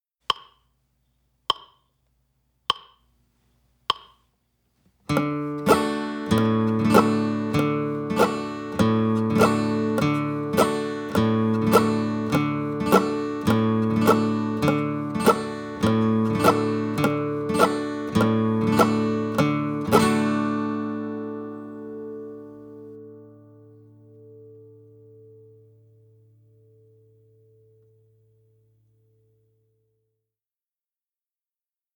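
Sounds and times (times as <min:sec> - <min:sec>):
mandolin: 0:05.1 - 0:23.2.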